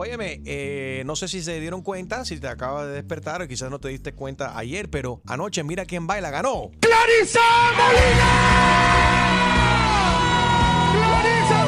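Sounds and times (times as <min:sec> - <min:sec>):
speech: 0:00.0 - 0:09.1
person yelling loudly and excitedly in celebration: 0:06.8 - 0:11.6.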